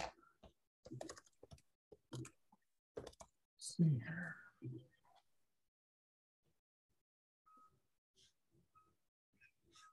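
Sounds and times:
typing on a computer keyboard: 0:00.9 - 0:02.4, 0:03.0 - 0:03.3
speech: 0:03.8 - 0:05.0.

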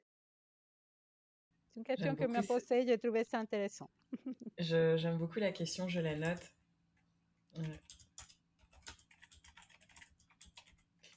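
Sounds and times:
speech: 0:01.8 - 0:06.6, 0:07.5 - 0:08.0
computer keyboard typing with light plastic clicks: 0:07.6 - 0:11.1.

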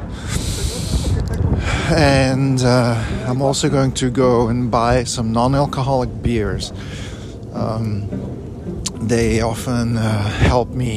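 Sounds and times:
heavy breathing outdoors: 0:00.0 - 0:03.3, 0:06.7 - 0:07.6
low rumbling outdoor wind: 0:00.0 - 0:10.9
speech: 0:01.9 - 0:08.4, 0:09.0 - 0:10.9.

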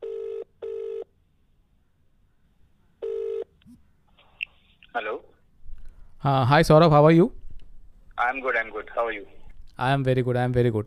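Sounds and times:
phone call ringing tone: 0:00.0 - 0:01.1, 0:03.0 - 0:03.6
speech: 0:05.0 - 0:05.3, 0:06.2 - 0:07.4, 0:08.2 - 0:10.8.

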